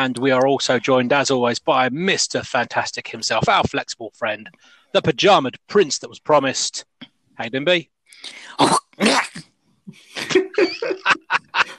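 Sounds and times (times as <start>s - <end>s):
speech: 0.0s - 11.7s
loud sneeze: 8.4s - 9.5s
laughter: 10.2s - 11.7s.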